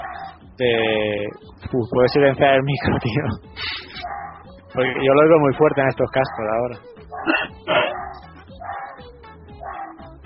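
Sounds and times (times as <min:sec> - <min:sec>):
dog barking: 0:00.0 - 0:00.4, 0:03.9 - 0:04.4, 0:06.2 - 0:10.1
speech: 0:00.6 - 0:03.7, 0:04.8 - 0:07.8.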